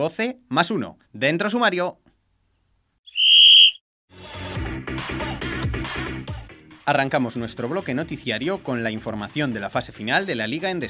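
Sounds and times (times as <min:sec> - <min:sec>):
speech: 0:00.0 - 0:02.0, 0:06.9 - 0:10.8
referee's whistle blast: 0:03.1 - 0:03.8
music: 0:04.1 - 0:10.8.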